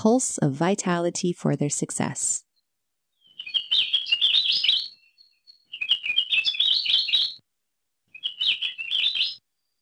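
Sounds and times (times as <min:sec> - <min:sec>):
speech: 0:00.0 - 0:02.5
Akiapolaau honeycreeper singing high warbling trills: 0:03.2 - 0:07.4, 0:08.2 - 0:09.4.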